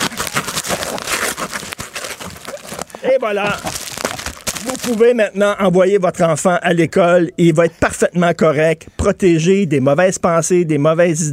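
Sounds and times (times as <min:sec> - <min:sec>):
sticky tape pulled from a roll: 0:00.0 - 0:02.9, 0:03.6 - 0:05.0
bubble wrap crinkling while handled: 0:00.0 - 0:05.2
speech: 0:03.0 - 0:03.9, 0:04.6 - 0:11.3.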